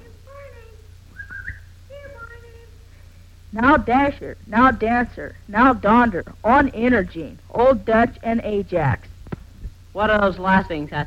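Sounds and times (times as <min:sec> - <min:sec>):
steady low hum: 0:00.0 - 0:11.0
person whistling warbling phrases: 0:01.1 - 0:01.6
speech: 0:03.5 - 0:09.1, 0:10.0 - 0:11.0.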